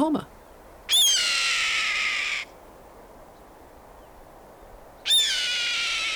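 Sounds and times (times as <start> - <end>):
speech: 0.0 - 0.4
red-tailed hawk giving a raspy scream: 0.9 - 2.5, 5.1 - 6.1.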